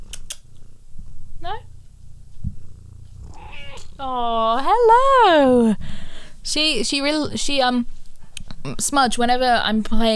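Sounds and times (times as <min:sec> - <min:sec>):
female cat purring against the microphone: 0:00.0 - 0:05.8
female cat short chirpy vocal trill: 0:01.4 - 0:05.3
speech: 0:04.0 - 0:05.8, 0:06.5 - 0:08.0, 0:08.6 - 0:10.1.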